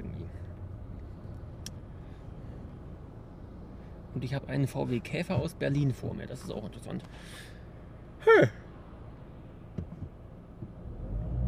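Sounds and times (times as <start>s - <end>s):
car driving in rush-hour traffic along a busy road: 0.0s - 11.4s
speech: 4.2s - 7.6s, 8.3s - 8.6s.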